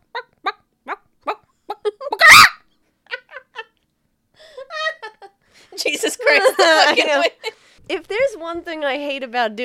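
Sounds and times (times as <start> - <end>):
person imitating a chicken clucking and squawking: 0.0 - 2.6
laughter: 4.5 - 5.3, 6.0 - 7.5
speech: 5.8 - 9.6.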